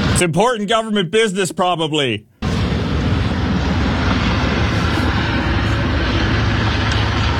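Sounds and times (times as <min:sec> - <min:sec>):
speech: 0:00.2 - 0:02.3
helicopter engine roar passing overhead: 0:02.4 - 0:07.3.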